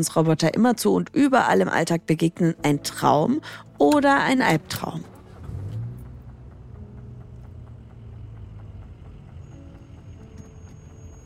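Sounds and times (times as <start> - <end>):
speech: 0.0 - 5.1
car driving off as a time-travel vehicle sound effect: 4.4 - 11.2.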